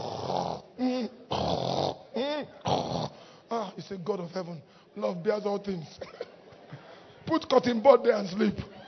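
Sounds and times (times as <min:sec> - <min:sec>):
person mimicking a spouse snoring: 0:00.0 - 0:03.2
speech: 0:03.9 - 0:06.2, 0:07.3 - 0:08.7.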